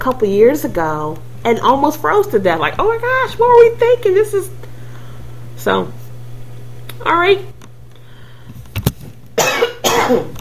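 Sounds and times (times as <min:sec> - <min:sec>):
speech: 0:00.0 - 0:04.6, 0:05.6 - 0:06.0, 0:07.0 - 0:07.6, 0:10.1 - 0:10.3
person coughing and clearing throat: 0:09.4 - 0:10.3.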